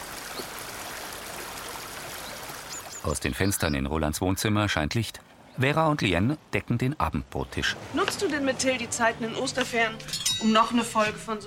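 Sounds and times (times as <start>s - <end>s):
brook flowing over a stone sill: 0.0s - 3.2s
speech: 3.0s - 11.4s.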